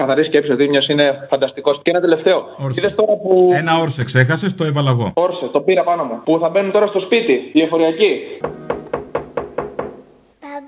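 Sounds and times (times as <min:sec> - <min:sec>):
speech: 0:00.0 - 0:08.7
knocking on a door: 0:08.4 - 0:10.2.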